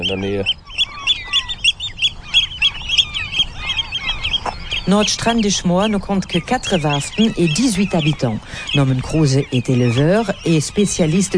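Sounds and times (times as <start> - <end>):
Eurasian oystercatcher calling near its nest on the Hallig Nordstrandischmoor: 0.0 - 11.3
speech: 0.1 - 0.6, 4.9 - 11.3.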